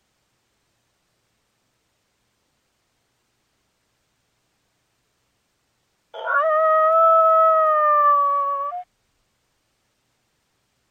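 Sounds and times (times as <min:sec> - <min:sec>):
coyote howl linked to mating: 0:06.2 - 0:08.9.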